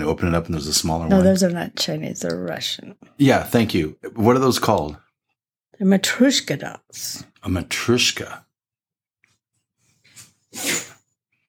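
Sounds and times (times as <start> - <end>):
speech: 0.0 - 5.0, 5.8 - 8.4, 10.5 - 10.9
loud sneeze with sharp intake: 10.5 - 11.0.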